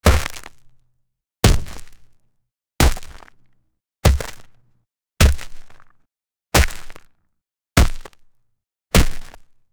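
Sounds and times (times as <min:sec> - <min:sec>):
deep stomping footsteps: 0:00.0 - 0:00.5, 0:01.4 - 0:02.0, 0:02.8 - 0:03.2, 0:04.1 - 0:04.5, 0:05.2 - 0:05.6.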